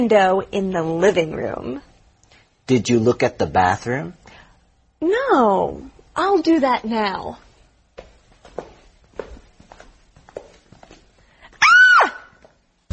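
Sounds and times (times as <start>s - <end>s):
speech: 0.0s - 1.9s, 2.7s - 4.4s, 5.0s - 7.4s
slow footsteps: 7.4s - 12.8s
woman screaming high-pitched: 11.6s - 12.4s.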